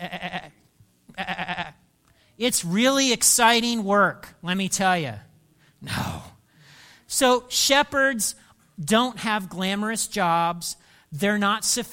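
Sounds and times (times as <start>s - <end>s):
sheep bleating with a wavering baa: 0.0s - 1.8s
speech: 2.4s - 6.1s, 7.2s - 11.9s.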